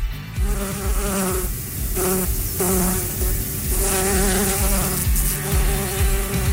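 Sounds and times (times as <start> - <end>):
swarm of angry bees buzzing: 0.0 - 6.5.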